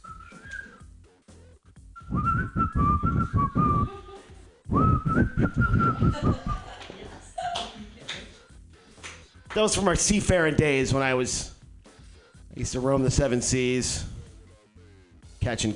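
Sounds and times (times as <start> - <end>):
person whistling short melodic phrases: 0.0 - 1.0, 2.0 - 4.0, 4.7 - 6.7
speech: 2.1 - 4.0, 5.2 - 6.7, 9.6 - 11.5, 12.6 - 14.1, 15.5 - 15.7
laughter: 5.6 - 8.4.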